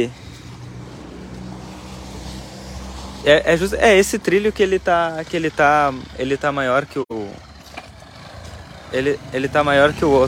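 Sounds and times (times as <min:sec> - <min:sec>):
speech: 0:00.0 - 0:00.2, 0:03.2 - 0:07.0, 0:08.9 - 0:10.2
broadband traffic noise: 0:00.0 - 0:10.2
motorcycle engine droning on a street: 0:03.4 - 0:10.2.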